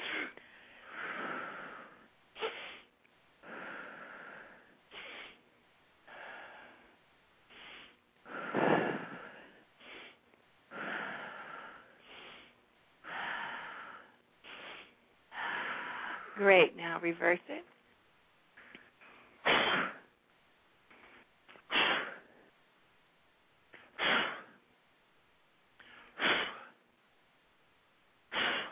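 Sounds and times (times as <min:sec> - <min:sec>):
quick sniffing inhales during a breathing exercise: 0:00.0 - 0:05.4, 0:07.5 - 0:16.4, 0:18.6 - 0:20.1, 0:20.9 - 0:22.4, 0:23.8 - 0:24.6, 0:25.8 - 0:26.8, 0:28.3 - 0:28.7
speech: 0:16.4 - 0:17.7.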